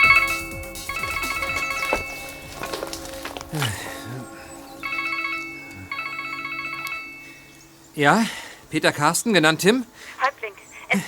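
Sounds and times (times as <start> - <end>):
mobile phone ringing: 0.0 - 3.2, 4.7 - 7.6
speech: 8.0 - 10.2.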